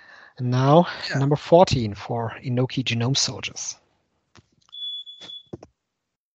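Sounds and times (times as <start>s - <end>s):
speech: 0.4s - 3.8s
smoke alarm beeping: 4.7s - 5.5s.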